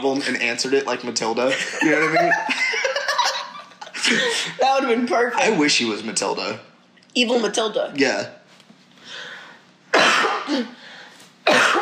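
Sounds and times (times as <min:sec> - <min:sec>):
speech: 0:00.0 - 0:02.8, 0:04.1 - 0:08.4, 0:10.5 - 0:10.7
quiet breathing: 0:08.9 - 0:09.8, 0:10.8 - 0:11.4
person coughing: 0:09.9 - 0:10.8, 0:11.4 - 0:11.8.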